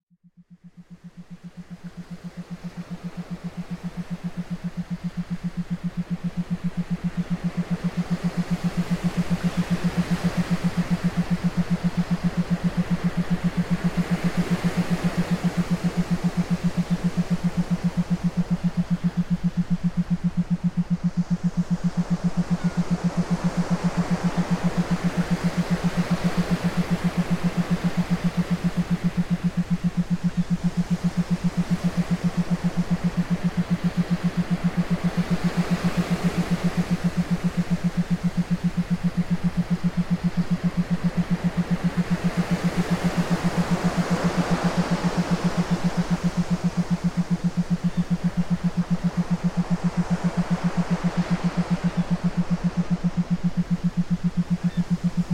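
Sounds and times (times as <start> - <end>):
theta binaural beats for meditation: 0.2 - 55.3.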